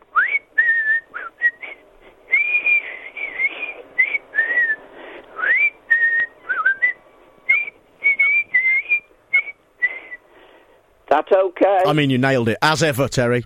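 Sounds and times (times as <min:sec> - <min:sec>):
man in the West Midlands whistling a lively tune with his lips: 0:00.1 - 0:10.2
speech: 0:11.2 - 0:13.4.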